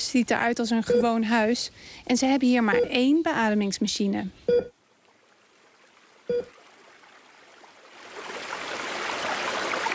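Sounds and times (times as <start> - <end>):
speech: 0.1 - 4.8, 6.3 - 6.6
river water rushing past a village: 6.5 - 9.9.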